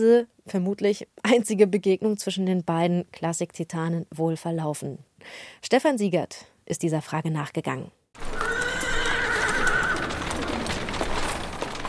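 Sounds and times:
speech: 0:00.0 - 0:08.0
horse whinnying: 0:08.2 - 0:11.0
carriage wheels rumbling on cobblestones: 0:08.2 - 0:11.8
horse hooves clattering over cobblestones: 0:08.2 - 0:11.8.

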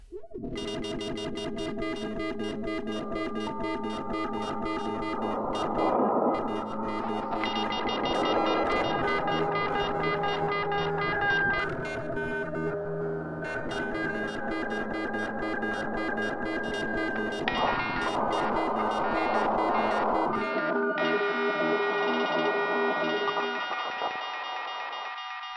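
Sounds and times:
dense wash of sustained tones drenched in echo and reverb: 0:00.1 - 0:24.6.

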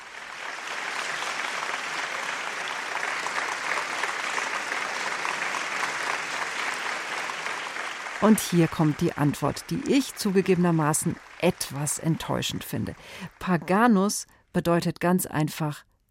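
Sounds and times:
large crowd applauding at the end of a concert: 0:00.0 - 0:13.9
speech: 0:08.2 - 0:15.9.

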